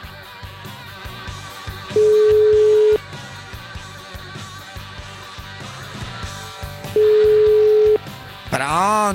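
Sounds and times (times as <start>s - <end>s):
ringing tone of an outgoing telephone call: 1.9s - 3.0s, 7.0s - 8.0s.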